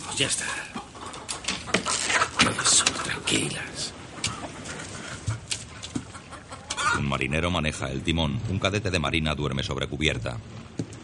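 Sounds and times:
hens clucking and squawking in a wooden cage aboard a sailing ship: 0.0s - 7.2s
speech: 0.2s - 0.8s, 2.4s - 4.0s, 7.0s - 10.6s.

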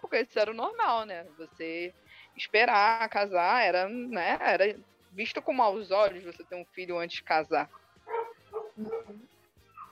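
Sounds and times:
speech: 0.1s - 7.8s, 8.8s - 9.3s
dog barking sharp woofs and a higher yip: 8.1s - 9.2s, 9.8s - 9.9s.

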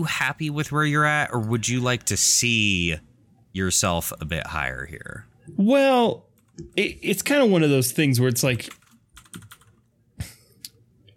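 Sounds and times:
speech: 0.0s - 8.8s
typing on a computer keyboard: 8.6s - 9.8s.

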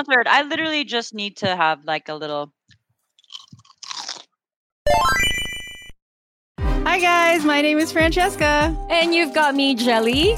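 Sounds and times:
speech: 0.0s - 2.6s, 6.9s - 10.3s
crisp snack being bitten and chewed: 3.0s - 4.4s.

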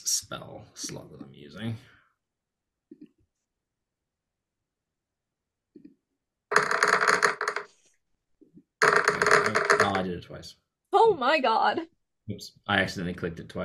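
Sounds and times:
speech: 0.2s - 1.9s, 10.1s - 13.6s
dice rattling and clattering: 6.5s - 7.8s, 8.8s - 10.0s.

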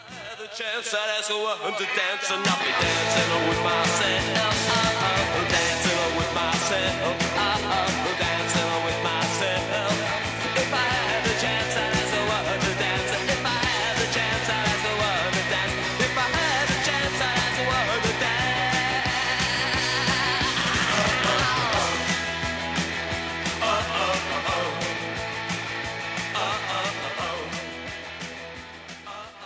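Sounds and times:
shouted male vocal: 0.0s - 22.1s
1981 punk rock song: 0.0s - 29.4s
fast distorted guitars: 1.8s - 29.4s
pounding drums: 2.5s - 28.7s
steady bass line: 2.8s - 29.2s.

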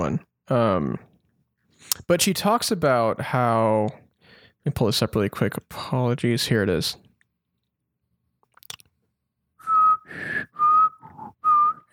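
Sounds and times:
speech: 0.0s - 1.1s, 1.9s - 4.0s, 4.6s - 7.0s
short faint breath: 4.2s - 4.6s, 10.0s - 11.2s
clear whistled notes: 9.6s - 11.9s.

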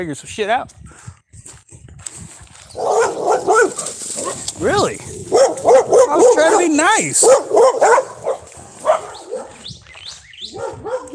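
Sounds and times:
speech: 0.0s - 1.1s, 4.6s - 8.2s
dogs barking: 2.7s - 9.8s, 10.4s - 11.1s.

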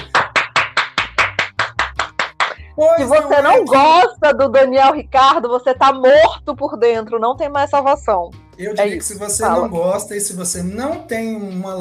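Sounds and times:
rhythmic hand clapping: 0.0s - 2.6s
speech: 2.9s - 11.7s.

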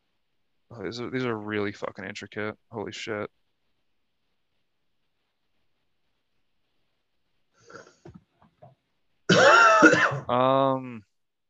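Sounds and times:
speech: 0.7s - 3.4s, 10.3s - 11.1s
loud rasping cough with groaning tail: 9.3s - 10.3s.

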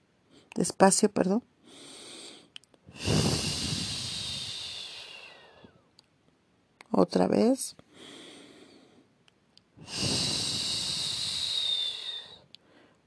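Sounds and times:
speech: 0.6s - 1.9s, 7.0s - 7.8s
slow deep breathing: 1.6s - 5.9s, 7.9s - 9.2s, 9.8s - 13.0s.

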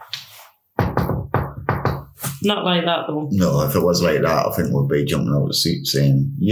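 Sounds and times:
loud knocks on a surface: 0.8s - 2.2s
speech: 2.4s - 6.5s.

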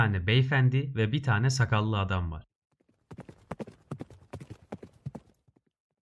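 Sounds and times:
speech: 0.0s - 2.5s
horse hooves clip-clopping: 2.8s - 5.7s.

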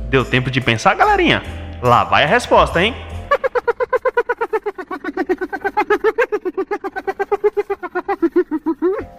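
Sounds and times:
speech: 0.1s - 3.1s
hyena laughing call: 3.2s - 9.1s.

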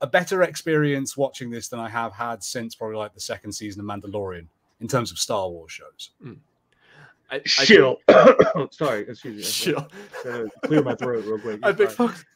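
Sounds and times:
speech: 0.0s - 6.5s, 7.3s - 12.3s
person clearing throat: 6.2s - 6.4s, 8.0s - 9.6s
laughter: 8.5s - 12.2s.

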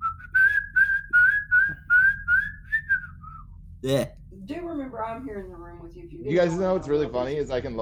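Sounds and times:
person whistling a tune: 0.0s - 3.5s
speech: 3.8s - 7.8s.

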